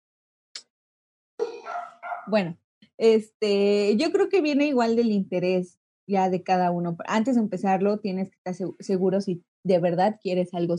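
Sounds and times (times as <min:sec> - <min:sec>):
dogs barking: 0:01.4 - 0:02.4
speech: 0:02.3 - 0:10.7.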